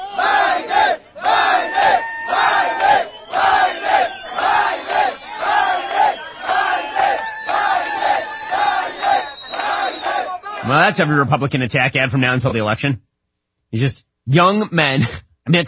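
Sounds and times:
large crowd of men chanting a name in unison: 0.0s - 11.0s
speech: 10.7s - 13.1s, 13.7s - 15.6s.

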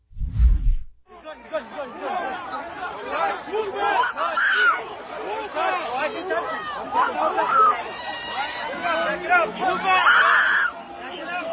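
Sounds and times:
dense crowd of protesters shouting and yelling at police officers: 1.2s - 11.5s
high-pitched screams of protesters: 10.0s - 10.8s.

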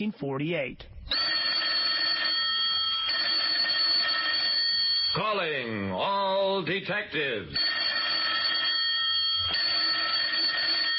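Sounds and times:
speech: 0.0s - 1.2s, 5.2s - 7.7s
old-style telephone bell ringing: 1.1s - 5.7s, 7.6s - 10.9s.

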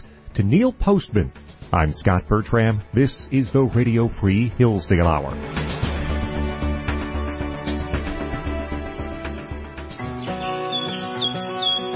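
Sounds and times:
speech: 0.4s - 5.6s
instrumental music with sustained bass and chords: 5.4s - 11.9s
birds chirping: 10.0s - 11.9s.

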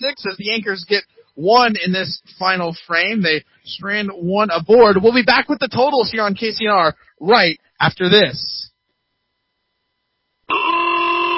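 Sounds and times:
speech: 0.2s - 8.7s
car horn blast: 10.5s - 11.3s.

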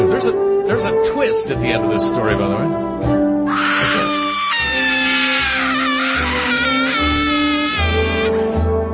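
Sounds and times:
speech: 0.2s - 3.2s
woman screaming: 3.5s - 8.4s.

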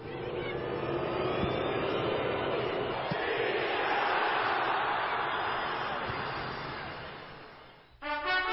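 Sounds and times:
huge stadium crowd chanting: 0.0s - 7.4s.

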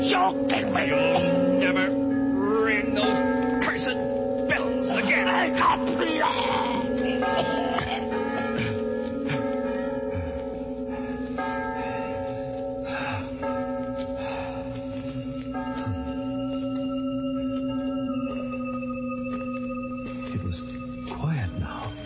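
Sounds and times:
church bells ringing: 0.0s - 22.0s
speech: 0.1s - 2.0s.

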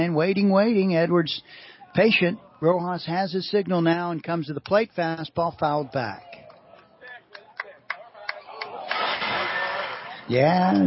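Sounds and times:
speech: 0.1s - 6.3s, 10.3s - 10.8s
car engine cranking and starting outside: 8.9s - 10.3s.

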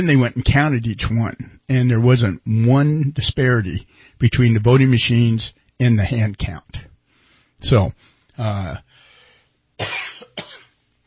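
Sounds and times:
speech: 0.0s - 6.9s, 7.6s - 8.9s, 9.8s - 10.6s
person coughing: 9.8s - 10.8s.

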